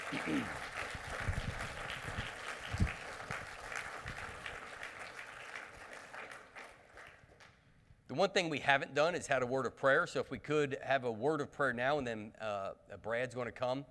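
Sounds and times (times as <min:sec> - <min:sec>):
audience at a church service applauding the color guard: 0:00.0 - 0:07.6
speech: 0:00.1 - 0:00.9, 0:08.2 - 0:13.8.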